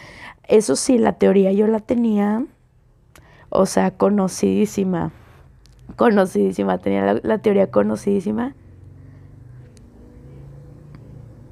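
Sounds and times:
speech: 0.5 - 2.6, 3.5 - 5.2, 5.9 - 8.6
motorcycle passing by: 7.1 - 11.5.

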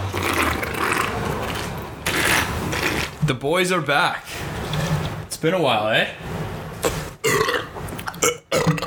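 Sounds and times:
loud drawn-out burp into the microphone: 0.1 - 3.1, 7.2 - 8.8
speech: 3.3 - 4.5, 5.4 - 7.0.

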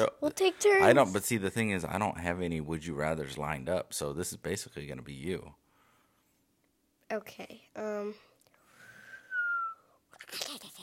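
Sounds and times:
speech: 0.0 - 5.6, 7.1 - 8.3
person whistling: 8.8 - 10.0.

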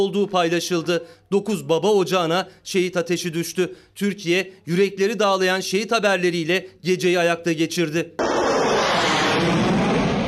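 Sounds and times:
speech: 0.0 - 8.3
loud jet engine roar: 8.2 - 10.2.

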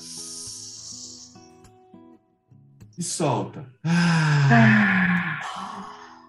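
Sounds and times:
speech: 3.0 - 4.8
long airy breath drawn in during a guided diaphragm breathing exercise: 3.9 - 6.2.

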